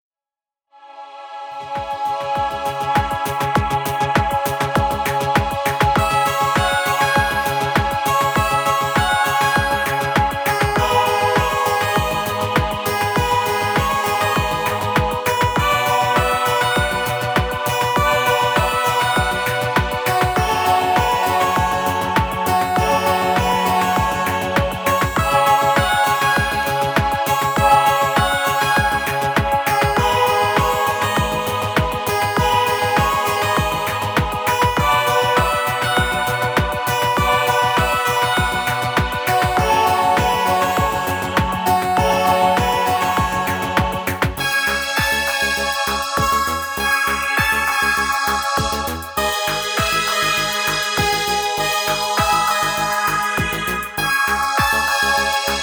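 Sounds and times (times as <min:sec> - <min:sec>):
Behringer Solina VC 340 string synthesizer: 0:00.8 - 0:55.6.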